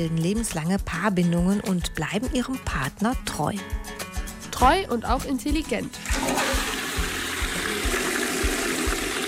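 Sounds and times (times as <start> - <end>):
speech: 0.0 - 3.9, 4.6 - 6.4
toilet flushing: 5.9 - 9.2.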